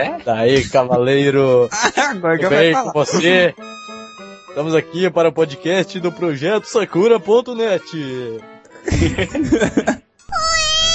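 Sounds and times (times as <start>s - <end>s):
speech: 0.0s - 3.7s, 4.6s - 10.0s
laughter: 0.5s - 3.6s, 8.8s - 10.0s
cat meowing while biting the microphone: 10.3s - 10.9s.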